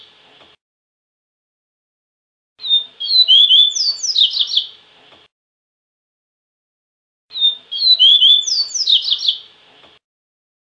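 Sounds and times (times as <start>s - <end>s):
double-collared seedeater song with slurred whistled notes and buzzy twittering trill: 2.6s - 4.7s, 7.3s - 9.5s.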